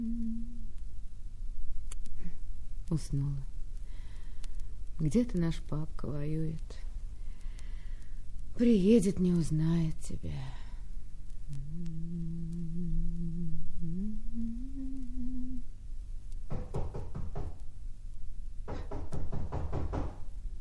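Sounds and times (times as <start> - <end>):
person humming a soft steady tune: 0.0 - 0.7, 11.4 - 15.8
speech: 2.9 - 3.5, 5.0 - 6.9, 8.6 - 10.6
rapid knocking on a door: 16.5 - 17.6, 18.7 - 20.3.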